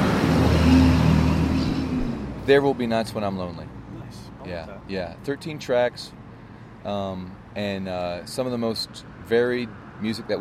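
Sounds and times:
fire truck engine drone passing: 0.0 - 3.0
road noise: 0.0 - 10.3
speech: 2.5 - 3.7, 4.4 - 6.2, 6.8 - 10.3.

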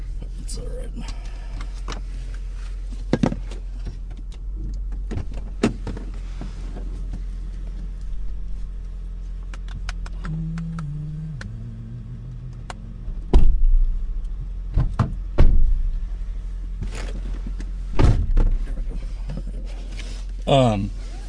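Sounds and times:
low road rumble inside a moving car: 0.0 - 21.2
speech: 0.5 - 2.0, 20.5 - 21.0
car rear door knocking and rattling: 13.1 - 14.0, 14.7 - 16.1, 17.9 - 19.5.

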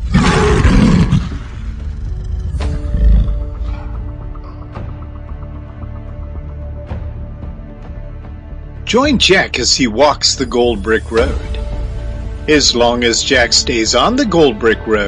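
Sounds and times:
lion roaring: 0.0 - 4.7
speech: 8.9 - 11.6, 12.5 - 15.0.

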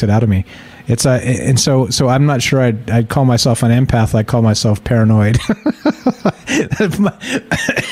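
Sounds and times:
speech: 0.0 - 7.9
laughter: 5.3 - 7.9
person coughing: 6.4 - 7.9.

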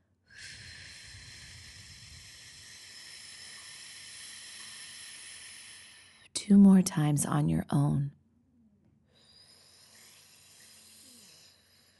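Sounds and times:
slow controlled exhale through pursed lips during a mindful breathing exercise: 0.3 - 6.3, 9.1 - 11.9
speech: 6.5 - 8.2.

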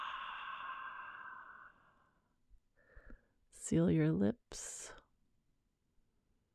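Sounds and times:
inhale through the nose: 0.0 - 2.0
long breathy exhale through an open mouth during a guided breathing exercise: 0.0 - 2.0
faint soft breath: 0.0 - 3.4
speech: 3.7 - 5.0.

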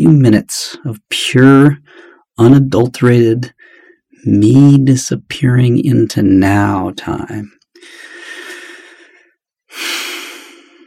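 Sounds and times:
speech: 0.0 - 1.8, 2.4 - 3.6, 4.2 - 8.2
deep breath during a guided relaxation exercise: 1.8 - 2.3, 3.6 - 4.2, 7.8 - 10.8.

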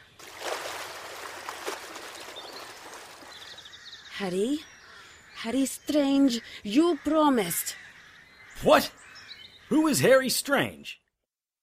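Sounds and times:
water splashing as two people fall back into it: 0.0 - 3.7
speech: 4.2 - 4.7, 5.4 - 7.8, 8.6 - 9.0, 9.7 - 11.0.

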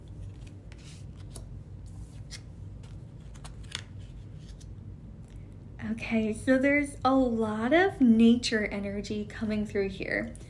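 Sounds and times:
oracle cards being flipped over: 0.0 - 4.7
low steady rumble: 0.0 - 10.4
speech: 5.8 - 10.4.

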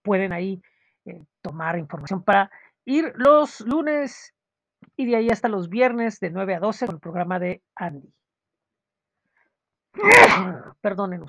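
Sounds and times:
speech: 0.0 - 8.2, 10.0 - 11.2
person sneezing: 10.0 - 10.6.

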